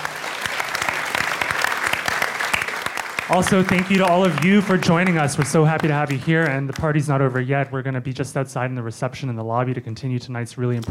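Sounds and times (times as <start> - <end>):
room full of people clapping: 0.0 - 7.7
speech: 3.3 - 10.8.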